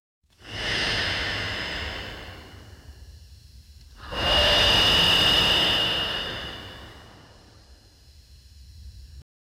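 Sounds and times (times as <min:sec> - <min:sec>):
diver breathing: 0:00.4 - 0:02.9, 0:04.0 - 0:07.8.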